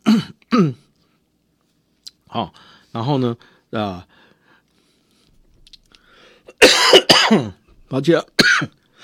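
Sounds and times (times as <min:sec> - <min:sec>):
single harsh loud cough: 0:00.0 - 0:00.8, 0:06.5 - 0:07.6, 0:08.4 - 0:08.8
speech: 0:00.6 - 0:00.8, 0:02.3 - 0:04.2, 0:06.6 - 0:08.8.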